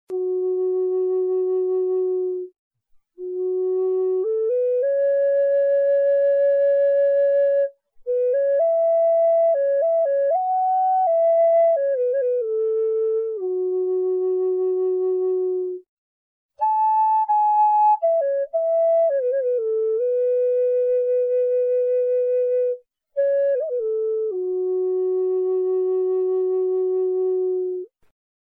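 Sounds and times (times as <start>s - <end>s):
large mahogany flutes in F sharp: 0.1s - 15.9s, 16.6s - 28.1s.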